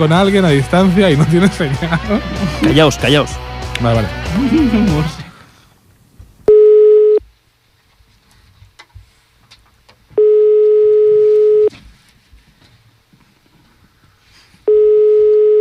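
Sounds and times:
speech: 0:00.0 - 0:05.2
laughter: 0:00.7 - 0:03.3, 0:03.9 - 0:05.4
outgoing phone call ringback tone, unanswered: 0:06.5 - 0:07.2, 0:10.2 - 0:11.7, 0:14.7 - 0:15.5
rustling: 0:07.2 - 0:10.2, 0:11.4 - 0:15.5.

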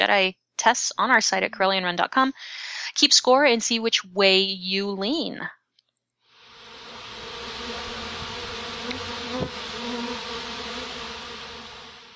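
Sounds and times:
speech: 0:00.0 - 0:05.6
swarm of bees buzzing: 0:06.5 - 0:12.1.

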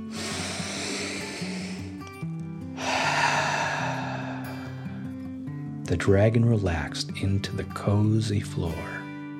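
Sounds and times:
slow deep breath in and out: 0:00.0 - 0:05.4
gentle sustained music: 0:00.0 - 0:09.3
speech: 0:05.9 - 0:09.0.

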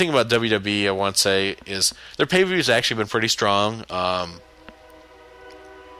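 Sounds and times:
speech: 0:00.0 - 0:04.5
horn of a passing train blaring: 0:04.4 - 0:05.9.

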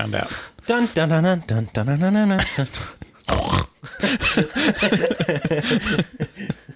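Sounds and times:
speech: 0:00.0 - 0:06.7
voice imitating a pig snorting and oinking: 0:01.5 - 0:03.8
laughter: 0:03.8 - 0:06.7.

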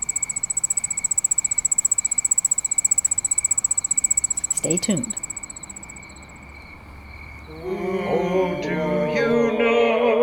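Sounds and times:
crickets chirping at night: 0:00.0 - 0:08.1
faint hiss of night ambience: 0:00.0 - 0:10.2
speech: 0:04.6 - 0:05.2, 0:07.6 - 0:08.0.

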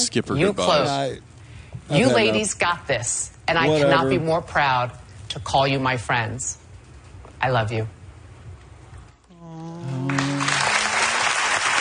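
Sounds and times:
speech: 0:00.1 - 0:06.6, 0:07.4 - 0:08.0
studio audience applause: 0:09.9 - 0:11.8.

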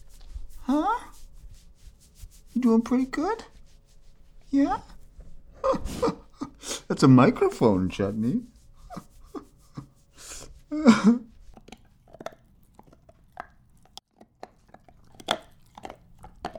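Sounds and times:
speech: 0:02.6 - 0:03.5, 0:04.5 - 0:04.9, 0:06.9 - 0:08.5, 0:10.7 - 0:11.3
dog gnawing on a hard nylon chew toy: 0:11.4 - 0:16.5.

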